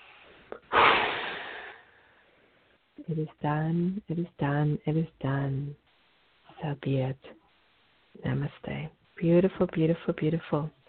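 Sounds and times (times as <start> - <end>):
deep breath drawn in sharply through the nose with a brief snort: 0.0 - 2.7
speech: 3.1 - 5.8, 6.6 - 7.4, 8.2 - 10.8.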